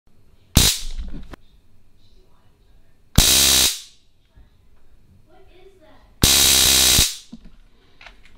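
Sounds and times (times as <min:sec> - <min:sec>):
real stun gun crackling intensely: 0:00.6 - 0:01.0, 0:03.2 - 0:04.0, 0:06.2 - 0:07.4.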